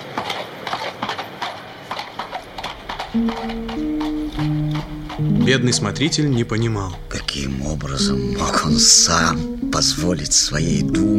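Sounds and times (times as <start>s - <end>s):
horses pulling a kibitka carriage galloping: 0.0s - 11.1s
sustained low tone: 2.8s - 11.1s
speech: 3.1s - 11.1s.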